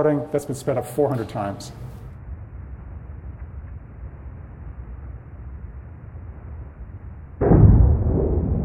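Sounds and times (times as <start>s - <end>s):
speech: 0.0s - 1.9s
low hum in sped-up earthquake recording: 0.7s - 8.6s
sudden sharp boom in sped-up earthquake recording: 7.4s - 8.6s.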